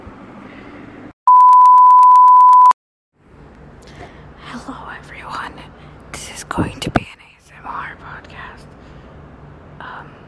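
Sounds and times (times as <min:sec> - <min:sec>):
loud steady high-pitched censor-style beep: 0:01.3 - 0:02.8
speech: 0:06.6 - 0:06.9.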